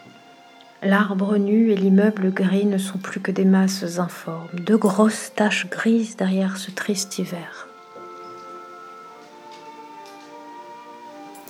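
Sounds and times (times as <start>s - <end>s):
speech: 0.8s - 7.7s
rain pattering on window glass: 8.4s - 11.4s.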